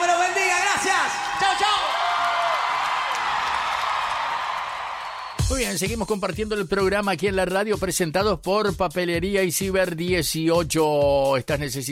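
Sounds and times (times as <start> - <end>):
scattered cheers and whoops: 0.0 - 5.5
crowd applauding: 0.0 - 5.6
speech: 5.5 - 11.9.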